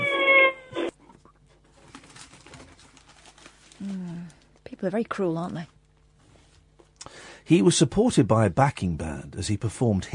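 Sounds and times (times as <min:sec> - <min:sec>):
cat meowing or caterwauling: 0:00.0 - 0:00.9
speech: 0:04.8 - 0:05.8, 0:07.5 - 0:10.1.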